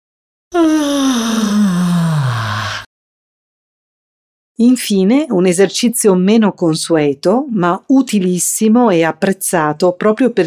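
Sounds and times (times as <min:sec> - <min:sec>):
speech: 0:00.5 - 0:00.9, 0:04.6 - 0:10.4
long voiced yawn falling in pitch: 0:00.5 - 0:02.9.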